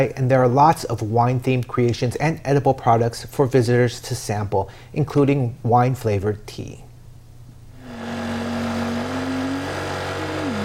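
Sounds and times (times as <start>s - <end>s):
speech: 0.0s - 6.8s
broadband road noise: 7.8s - 10.6s
small scooter engine running: 7.8s - 10.6s.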